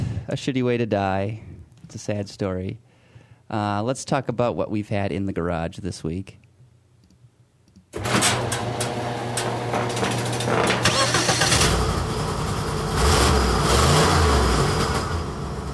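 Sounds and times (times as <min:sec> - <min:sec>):
speech: 0:00.3 - 0:02.8, 0:03.5 - 0:06.4
big-block Ford 365 horsepower engine in a Lincoln with exhaust leak revving: 0:08.0 - 0:15.7.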